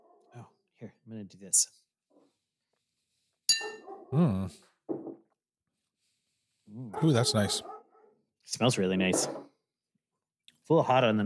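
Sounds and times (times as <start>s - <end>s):
speech: 1.1s - 1.8s, 4.1s - 4.7s, 6.8s - 7.7s, 8.5s - 9.5s, 10.7s - 11.2s
glasses clinking in a toast over rye whiskey: 3.5s - 3.8s
murmured vocal sounds: 4.1s - 4.6s.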